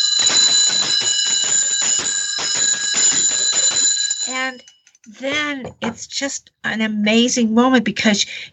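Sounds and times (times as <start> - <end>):
sleigh bells jingling: 0.0 - 4.9
speech: 4.4 - 8.5.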